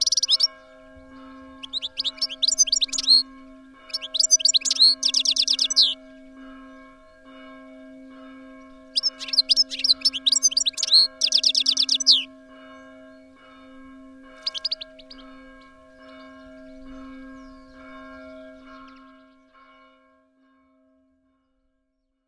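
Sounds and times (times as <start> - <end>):
European goldfinch singing: 0.0 - 0.5, 1.3 - 6.0, 8.9 - 12.3, 14.3 - 19.2.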